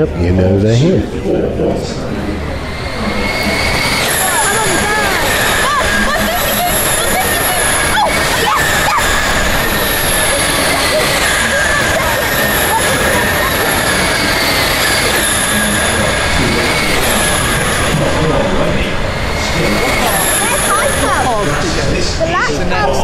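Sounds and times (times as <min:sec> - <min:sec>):
speech: 0:00.0 - 0:03.2
two young boys screeching: 0:02.8 - 0:15.4, 0:19.8 - 0:21.5
laughter: 0:03.1 - 0:23.0.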